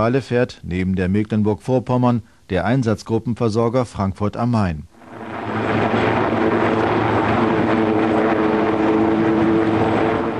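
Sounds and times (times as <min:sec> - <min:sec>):
speech: 0:00.0 - 0:04.9
frigate's ship-borne helicopter rotor and engine roar: 0:05.0 - 0:10.3.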